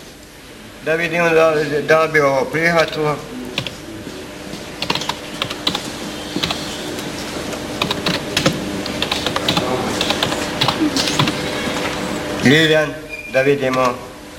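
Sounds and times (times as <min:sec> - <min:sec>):
speech: 0:00.8 - 0:03.4, 0:12.4 - 0:14.1
typing on a computer keyboard entering a name into a savings-book application form: 0:03.6 - 0:03.8, 0:04.8 - 0:06.7, 0:07.8 - 0:11.9.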